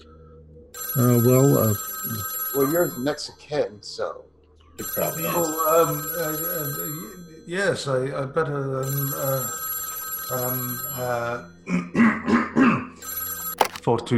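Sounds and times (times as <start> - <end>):
telephone bell ringing: 0.8 - 3.2, 4.8 - 8.1, 8.8 - 11.6, 13.0 - 13.8
speech: 0.9 - 9.6, 10.3 - 12.6, 13.8 - 14.1.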